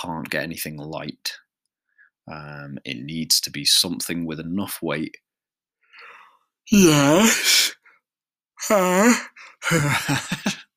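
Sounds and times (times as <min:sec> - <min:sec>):
speech: 0:00.0 - 0:01.4, 0:02.3 - 0:05.2, 0:06.7 - 0:07.7, 0:08.6 - 0:10.6
short breath: 0:05.8 - 0:06.5
person yawning: 0:06.7 - 0:07.8, 0:08.6 - 0:10.1
laughter: 0:09.7 - 0:10.7.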